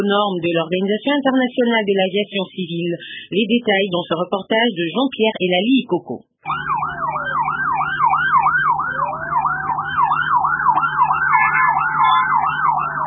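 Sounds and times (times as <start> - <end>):
speech: 0.0 - 6.8
emergency vehicle and ambulance sirens wailing: 6.5 - 13.0.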